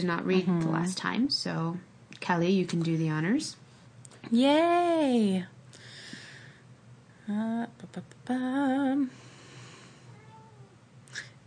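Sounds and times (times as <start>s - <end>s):
speech: 0.0s - 3.6s, 4.2s - 5.5s, 7.3s - 9.2s
low steady hum: 0.0s - 11.4s
domestic cat meowing discontentedly: 10.1s - 10.8s.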